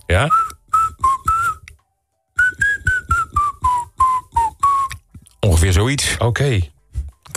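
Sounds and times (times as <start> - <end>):
speech: 0.1 - 0.6, 5.8 - 6.7
person whistling a march-like tune: 0.2 - 1.7, 2.4 - 5.1.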